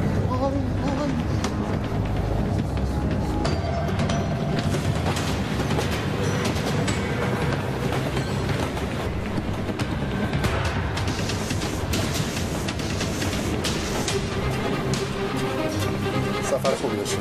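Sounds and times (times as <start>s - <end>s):
train rolling along rails: 0.0s - 17.1s.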